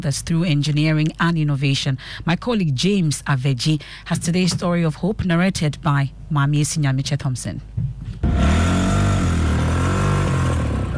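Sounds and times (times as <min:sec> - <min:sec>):
speech: 0:00.0 - 0:08.0
car engine revving: 0:08.2 - 0:10.9.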